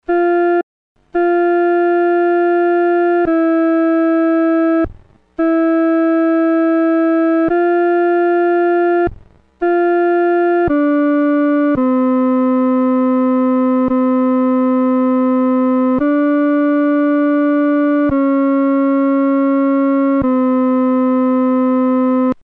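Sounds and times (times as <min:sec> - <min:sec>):
solo instrument playing a hymn second part: 0:00.1 - 0:22.3.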